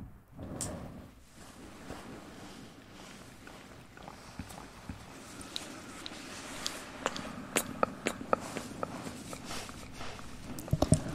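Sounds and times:
gentle mouth sounds: 3.9s - 11.1s.

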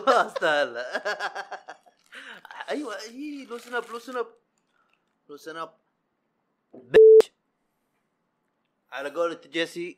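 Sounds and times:
speech: 0.0s - 1.6s, 2.2s - 4.4s, 5.3s - 5.8s, 8.9s - 9.9s
laughter: 0.0s - 2.0s
censor beep tone: 7.0s - 7.3s.

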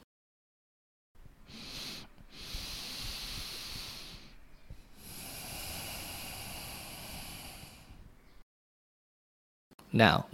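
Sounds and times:
slow deliberate breathing: 1.3s - 8.4s.

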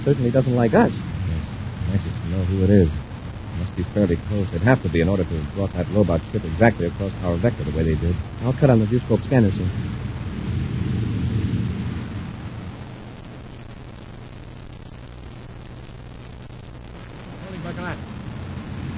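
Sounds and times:
speech: 0.0s - 1.0s, 1.9s - 3.0s, 3.6s - 10.1s
brief voice-like sound: 0.0s - 9.8s
deep rolling explosion: 0.0s - 13.0s
low steady drone: 0.0s - 13.3s.

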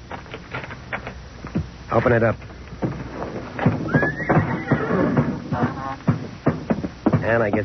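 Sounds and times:
hooves shuffling and thumping on a hard floor: 0.1s - 7.6s
speech: 1.9s - 2.5s, 7.3s - 7.6s
horses tied in stalls in a barn whinnying and snorting: 3.2s - 6.6s
high-pitched horse neigh: 3.9s - 6.0s.

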